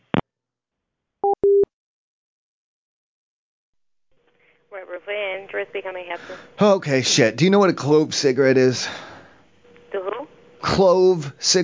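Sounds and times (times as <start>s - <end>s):
telephone busy signal beeps: 1.2s - 1.6s
speech: 4.8s - 9.1s, 10.6s - 11.6s.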